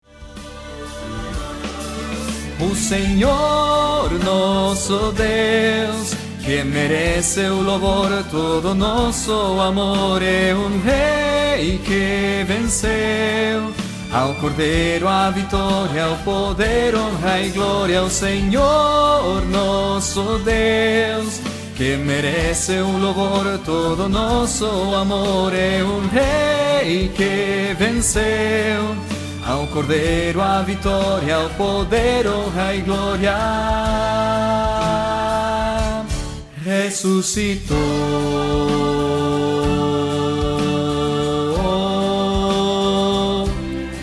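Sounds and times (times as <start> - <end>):
baritone voice: 0.0 - 44.0.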